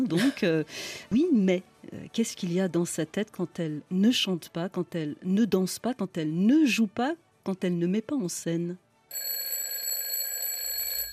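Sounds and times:
speech: 0.0s - 9.3s
alarm clock ringing with a steady piercing electronic tone: 9.1s - 11.1s.

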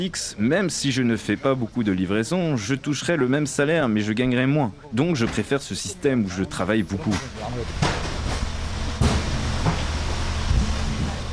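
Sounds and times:
speech: 0.0s - 7.9s
steady low rumble of street and engine noise: 0.0s - 11.3s
delivery truck cargo door being shut with metallic knocks and thuds: 7.8s - 11.2s.

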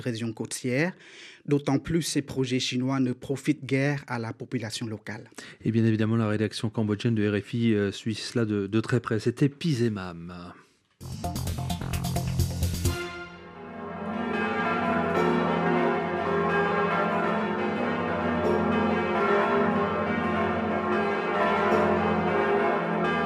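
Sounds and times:
speech: 0.0s - 11.6s
full peal of large cathedral church bells: 12.9s - 23.2s.

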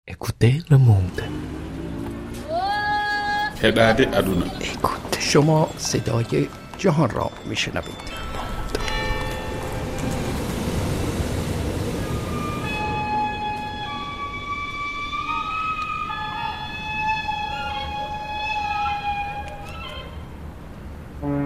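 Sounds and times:
speech: 0.1s - 1.4s, 3.6s - 8.3s
sirens wailing in overlapping wavering tones: 1.2s - 20.6s
dense noisy background: 2.2s - 21.3s
steady sustained tone: 3.1s - 19.7s.

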